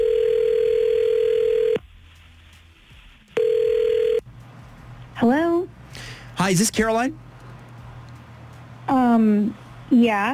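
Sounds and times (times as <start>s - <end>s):
telephone ringback tone while placing a call: 0.0s - 1.8s, 3.4s - 4.2s
speech: 6.5s - 7.2s, 9.2s - 10.3s.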